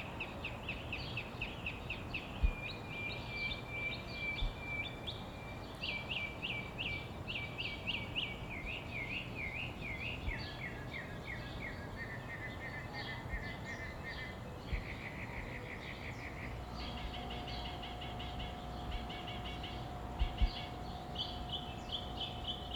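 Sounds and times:
dawn bird chorus in summer in Phoenix, Arizona: 0:00.0 - 0:22.7
faint steady tone: 0:00.0 - 0:22.7
low background rumble: 0:14.6 - 0:22.7.

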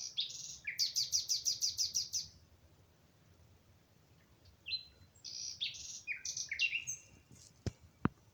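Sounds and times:
common nightingale singing: 0:00.0 - 0:02.4, 0:04.4 - 0:07.3.

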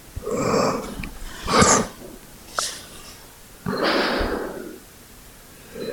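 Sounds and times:
dog sneezing and snorting: 0:00.2 - 0:04.4.

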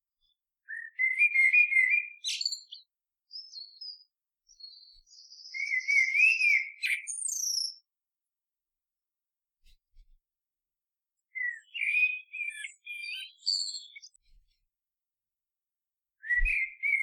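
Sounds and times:
bird song of clear whistled slurred notes and high chirps: 0:00.6 - 0:07.9, 0:11.3 - 0:14.2, 0:16.2 - 0:17.0.

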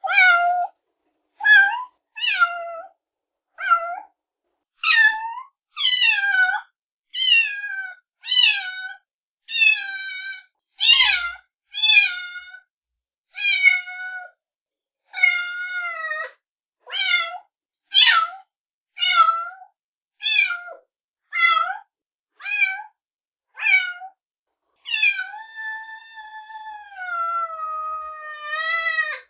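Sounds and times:
kitten meowing insistently: 0:00.0 - 0:00.7, 0:01.4 - 0:02.9, 0:03.6 - 0:04.1, 0:04.8 - 0:12.6, 0:13.4 - 0:14.3, 0:15.2 - 0:16.2, 0:18.0 - 0:18.4, 0:20.2 - 0:20.8, 0:21.4 - 0:21.8, 0:22.4 - 0:22.9, 0:23.6 - 0:24.1, 0:24.8 - 0:29.2.

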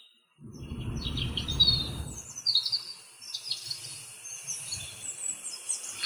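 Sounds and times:
European robin singing: 0:00.5 - 0:02.3, 0:05.6 - 0:06.0.

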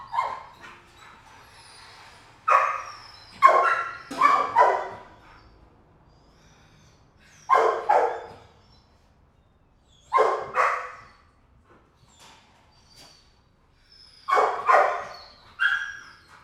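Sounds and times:
kennel dog barking: 0:02.5 - 0:05.2, 0:07.5 - 0:08.5, 0:10.1 - 0:11.2, 0:14.3 - 0:16.0.

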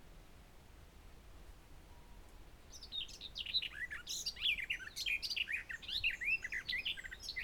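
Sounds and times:
garden warbler singing a rapid melodious warble: 0:02.7 - 0:07.4.

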